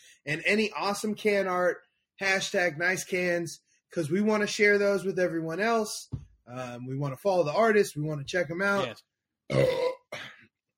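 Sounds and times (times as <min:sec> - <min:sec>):
speech: 0:00.2 - 0:09.9
person burping: 0:09.5 - 0:10.4.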